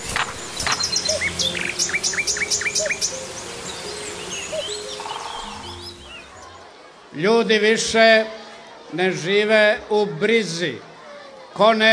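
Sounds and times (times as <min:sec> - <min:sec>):
steady outdoor hum: 0:00.0 - 0:06.5
birds chirping and tweeting: 0:00.0 - 0:07.1
speech: 0:07.2 - 0:10.9, 0:11.6 - 0:11.9.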